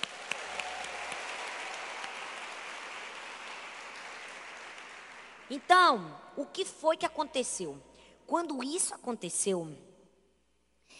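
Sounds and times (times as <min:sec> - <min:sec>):
audience applause: 0:00.0 - 0:05.6
speech: 0:05.5 - 0:09.9.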